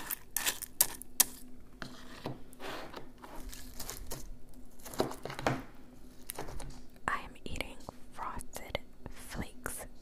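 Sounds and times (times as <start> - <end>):
cereal being handled, crackling and clicking: 0.0 - 1.6, 3.2 - 5.4
faint low steady hum: 0.0 - 10.0.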